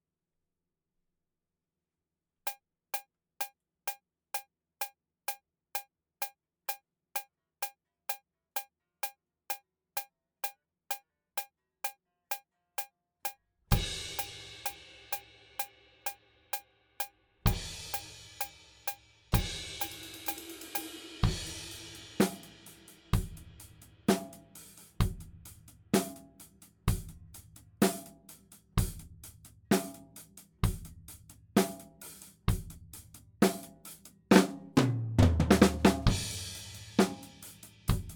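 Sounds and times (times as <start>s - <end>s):
drums: 13.7s - 38.1s.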